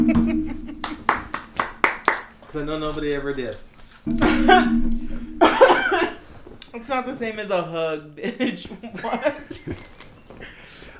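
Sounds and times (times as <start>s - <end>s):
sharp hand claps: 0.2s - 2.4s
speech: 2.6s - 5.0s, 6.8s - 9.9s
laughter: 5.4s - 6.2s, 8.4s - 10.1s.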